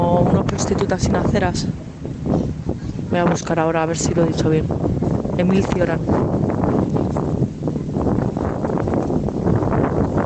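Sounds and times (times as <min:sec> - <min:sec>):
strong wind blowing at a street corner: 0:00.0 - 0:10.2
speech: 0:00.6 - 0:01.9, 0:03.1 - 0:06.4.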